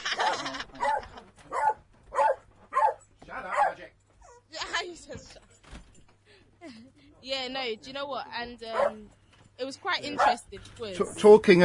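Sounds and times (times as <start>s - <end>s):
laughter: 0.0s - 1.5s, 6.4s - 7.1s
dog barking: 0.2s - 4.4s, 8.7s - 9.1s, 10.1s - 10.4s
speech: 7.4s - 11.6s.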